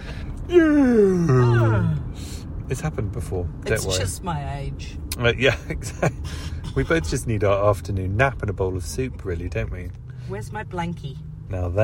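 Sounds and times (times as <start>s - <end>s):
person yawning: 0.5s - 2.1s
speech: 2.7s - 11.8s.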